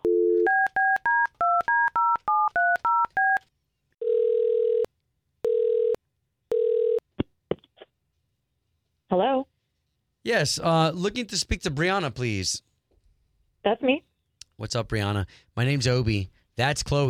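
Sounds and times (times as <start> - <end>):
telephone ringing tones: 0.0 - 3.4, 4.0 - 7.0
speech: 10.3 - 12.7, 13.6 - 17.0.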